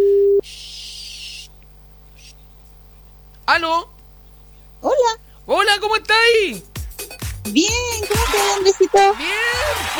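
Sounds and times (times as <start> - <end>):
telephone line beep while placing a call: 0.0 - 0.4
speech: 3.6 - 3.9, 5.5 - 6.7, 7.4 - 9.9
laughter: 8.0 - 9.9.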